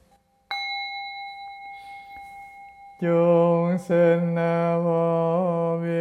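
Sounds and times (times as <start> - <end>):
Buddhist bell struck for dedication of merit: 0.5 - 3.8
speech: 3.0 - 5.9.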